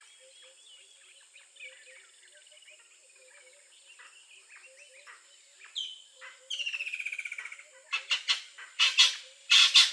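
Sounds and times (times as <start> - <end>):
Natal spurfowl African bird calling: 8.0 - 9.9.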